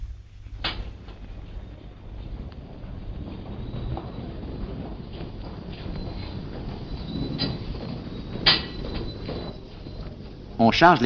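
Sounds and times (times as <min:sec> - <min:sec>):
low rumble of station and train noise: 0:00.0 - 0:11.0
metro entrance one-way gates swinging shut: 0:00.6 - 0:11.0
speech: 0:10.7 - 0:11.0.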